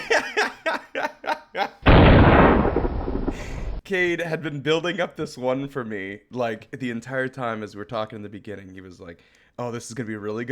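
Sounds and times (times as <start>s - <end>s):
snickering laughter: 0.0s - 1.8s
loud explosion with a deep roaring boom: 1.8s - 3.8s
speech: 3.9s - 10.4s.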